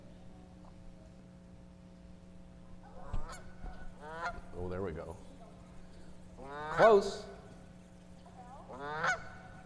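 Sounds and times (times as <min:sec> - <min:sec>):
Canada goose honking: 0:03.0 - 0:04.5, 0:06.4 - 0:07.1, 0:08.7 - 0:09.6
speech: 0:06.8 - 0:07.2.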